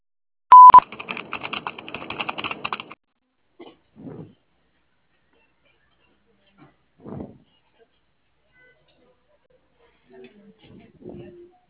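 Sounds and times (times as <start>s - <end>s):
answering machine beep tone: 0.5s - 0.8s
rapid irregular clicks: 0.7s - 3.0s.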